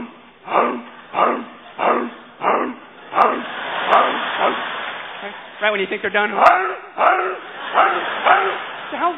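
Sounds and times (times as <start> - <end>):
dog barking: 0.6 - 4.6, 6.4 - 8.6
speech: 5.8 - 9.1.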